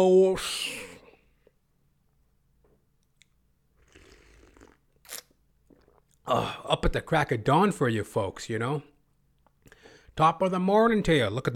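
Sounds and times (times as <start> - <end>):
speech: 0.0 - 0.7, 6.3 - 8.9, 10.2 - 11.5
swallow-like sound: 2.6 - 6.7
slurping sip of coffee from a cup: 3.8 - 6.2.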